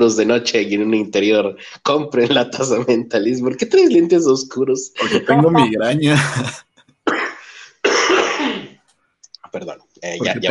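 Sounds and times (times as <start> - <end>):
laughter: 0.0 - 6.6, 10.2 - 10.4
speech: 0.0 - 6.7, 9.5 - 10.4
harsh raspy coughing fit: 5.0 - 8.8.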